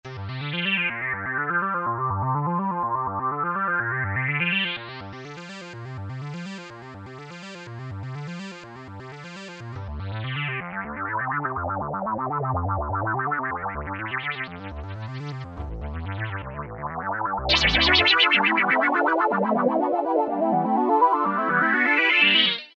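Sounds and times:
atmospheric synth arpeggio: 0.9s - 22.7s.

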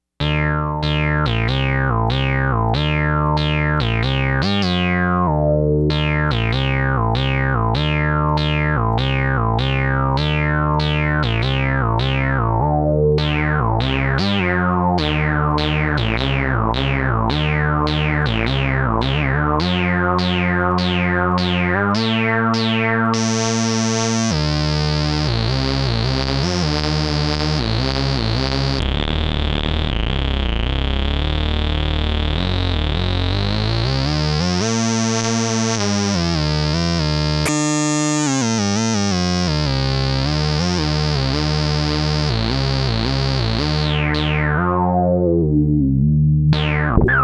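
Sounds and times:
fat Moog Micromoog analog synthesizer sound: 0.2s - 47.2s.

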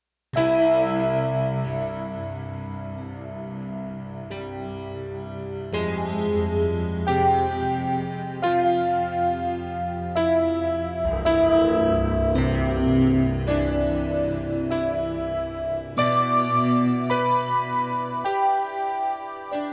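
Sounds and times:
ambience on a digital synthesizer: 0.4s - 19.7s.

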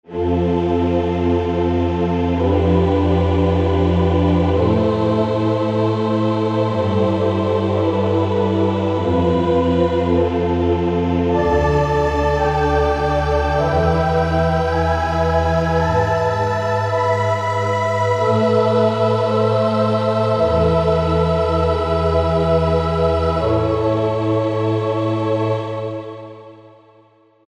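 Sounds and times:
haunting synth pad: 0.1s - 26.2s.

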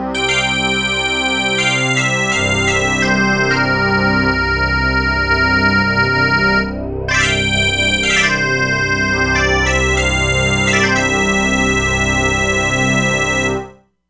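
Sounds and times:
E-mu Proteus-3 bagpipe factory patch: 0.2s - 13.8s.

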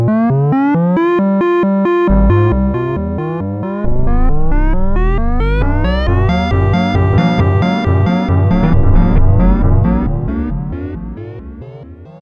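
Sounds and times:
Roland U-220 factory timbre synthesizer sound: 0.1s - 12.1s.

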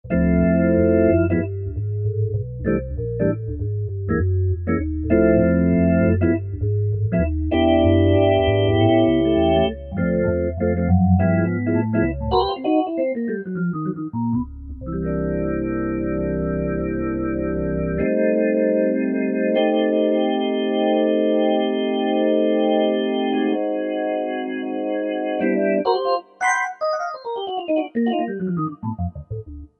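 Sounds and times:
Korg MSC-9S organ with Jazz4 and RS settings: 0.1s - 29.6s.

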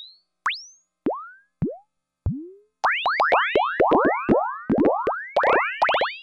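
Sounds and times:
percussive synthesizer sound from a Roland Juno-60 factory preset: 0.5s - 6.1s.

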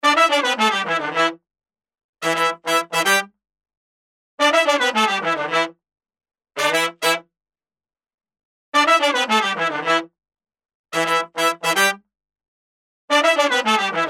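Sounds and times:
RnB horn section playing: 0.0s - 1.3s, 2.2s - 3.2s, 4.4s - 5.7s, 6.6s - 7.2s, 8.8s - 10.0s, 11.0s - 12.0s, 13.1s - 14.0s.

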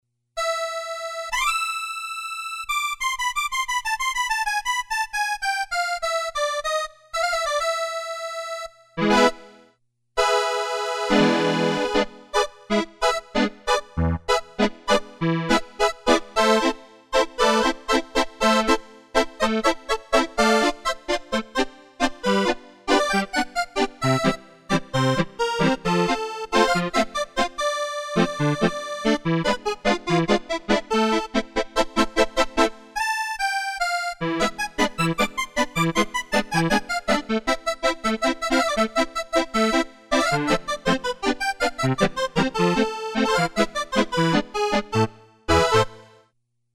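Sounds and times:
Casio CSM-1 accordion tones: 0.4s - 46.3s.

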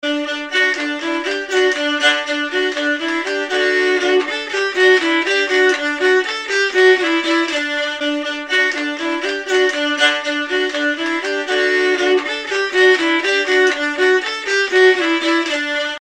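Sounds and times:
Nordic keyed fiddle playing: 0.0s - 15.9s.

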